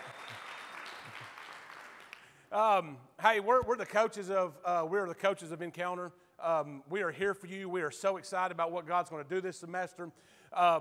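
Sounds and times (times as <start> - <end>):
audience applause at a church ministry gathering: 0.0 - 2.3
speech: 2.5 - 10.8.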